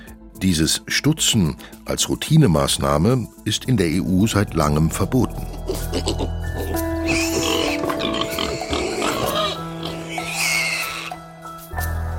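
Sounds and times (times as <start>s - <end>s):
speech: 0.4s - 5.3s
pigs grunting and squealing in a crowded pen: 5.2s - 11.2s.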